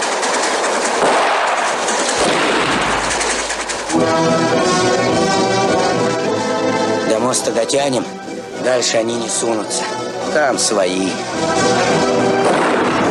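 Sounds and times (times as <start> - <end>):
loud sharp gunshots in a film clip: 0.0 - 5.3, 12.4 - 13.0
dense noisy background: 0.0 - 13.0
sustained music with steady tones: 2.2 - 13.0
speech: 7.3 - 12.8.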